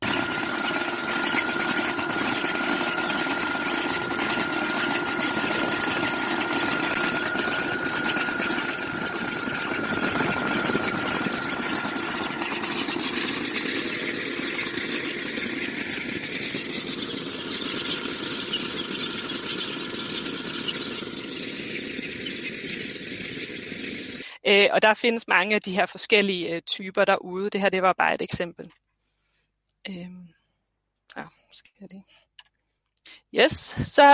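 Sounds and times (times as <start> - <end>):
tractor engine running with mounted weeding robot: 0.0 - 24.4
faint mechanical whine: 0.0 - 24.5
speech: 24.5 - 28.8, 29.9 - 30.3, 31.2 - 32.3, 33.1 - 34.1.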